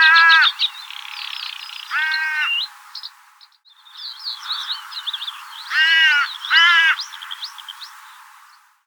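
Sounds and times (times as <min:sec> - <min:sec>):
Carrion crow Corvus corone cawing: 0:00.0 - 0:00.7, 0:01.9 - 0:02.7, 0:04.4 - 0:07.5
small birds chirping and twittering: 0:00.0 - 0:08.8.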